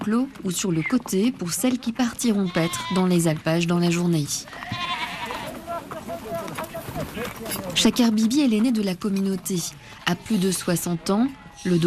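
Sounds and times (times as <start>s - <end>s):
speech: 0.0s - 4.9s, 7.4s - 11.8s
voices of men, women and children sorting animals: 0.0s - 11.8s
herd of sheep, ibex and goats bleating while being sorted: 2.1s - 3.3s, 4.5s - 7.8s, 9.8s - 11.8s.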